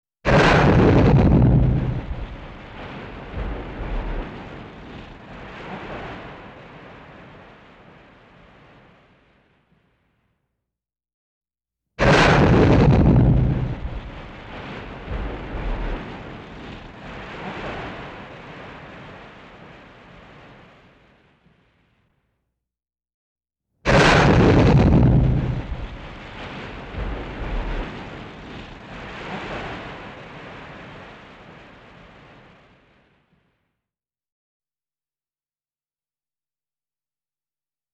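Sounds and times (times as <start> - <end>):
detonated bomb explosion: 0.3 - 9.2, 12.0 - 20.8, 23.9 - 32.6.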